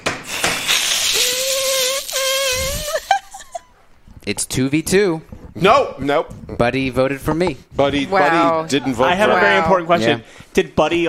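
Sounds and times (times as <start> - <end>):
people hissing like cats: 0.3 - 3.4
speech: 4.2 - 11.0.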